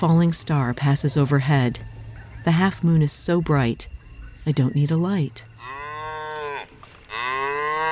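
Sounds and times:
speech: 0.0s - 5.8s
cow mooing: 5.6s - 7.9s.

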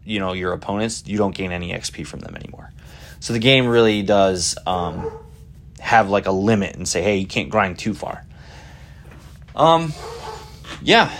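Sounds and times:
speech: 0.1s - 5.2s, 5.8s - 8.3s, 9.6s - 10.2s, 10.8s - 11.1s
pet dog barking: 4.9s - 5.4s, 9.9s - 10.6s.

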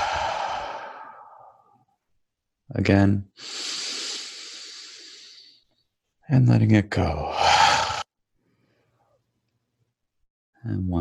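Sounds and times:
deep exhale during guided mindfulness meditation: 0.0s - 1.8s, 3.4s - 5.7s
speech: 2.7s - 3.7s, 6.3s - 7.4s, 10.6s - 10.9s.

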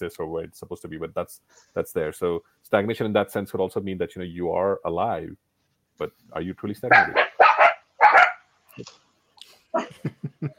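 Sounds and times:
speech: 0.0s - 7.3s, 8.8s - 9.0s, 9.7s - 10.5s
dog barking: 6.9s - 8.4s.

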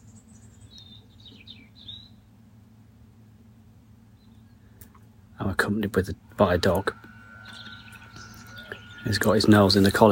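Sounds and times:
birds calling and singing outdoors: 0.0s - 2.2s, 4.1s - 4.7s, 6.3s - 10.1s
steady low rumble: 0.0s - 10.1s
speech: 5.6s - 7.1s, 9.1s - 10.1s.

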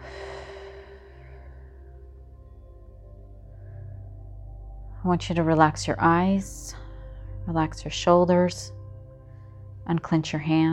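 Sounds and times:
deep breath exhaled slowly during a guided relaxation exercise: 0.0s - 1.8s
low sustained tonal background: 0.0s - 10.7s
speech: 5.0s - 6.8s, 7.5s - 8.8s, 9.9s - 10.7s.

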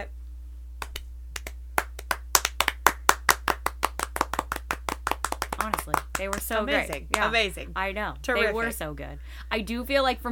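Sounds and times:
faint low hum: 0.0s - 10.2s
slow hand claps: 0.8s - 7.3s
speech: 5.6s - 10.2s.

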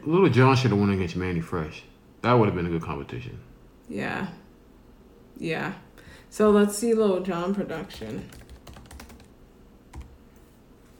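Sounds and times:
speech: 0.0s - 4.4s, 5.4s - 8.4s
typing on a computer keyboard: 7.5s - 9.3s, 9.9s - 10.2s.

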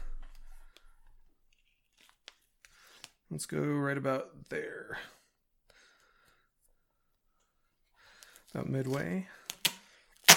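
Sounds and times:
speech: 3.3s - 5.2s, 8.6s - 9.4s
adhesive tape pulled off its roll while wrapping: 9.5s - 10.3s.

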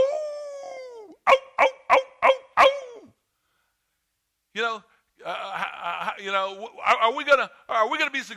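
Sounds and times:
person yipping: 0.0s - 3.1s
person imitating a wolf howl: 0.0s - 3.2s
speech: 4.6s - 8.3s.

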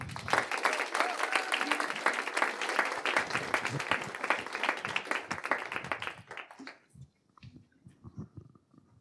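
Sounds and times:
audience applause: 0.0s - 6.8s.

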